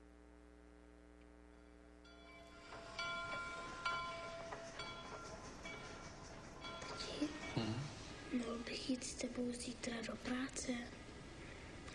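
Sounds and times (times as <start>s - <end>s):
train rumbling past: 2.1s - 11.4s
train wheels squealing and whining: 2.2s - 7.6s
speech: 8.4s - 11.0s.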